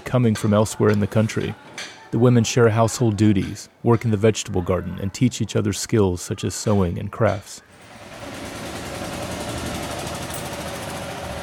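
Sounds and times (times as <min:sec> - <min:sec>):
speech: 0:00.1 - 0:07.7
three-wheeled auto rickshaw motorcycle engine running: 0:07.8 - 0:11.4.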